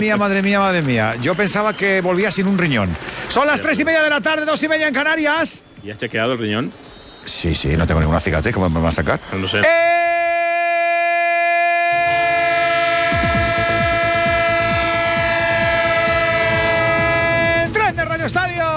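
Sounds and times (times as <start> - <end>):
speech: 0.0 - 10.0
train horn holding a long steady tone: 9.6 - 17.8.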